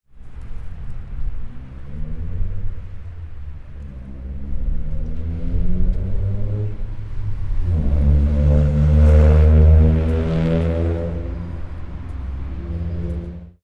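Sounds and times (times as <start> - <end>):
car: 0.1 - 13.6.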